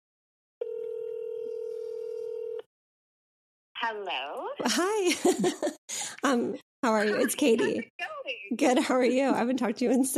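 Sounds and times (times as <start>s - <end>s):
electronic phone ringing tone over a speakerphone: 0.6s - 2.7s
speech: 3.8s - 10.1s
laughter: 4.7s - 6.2s, 6.8s - 8.0s.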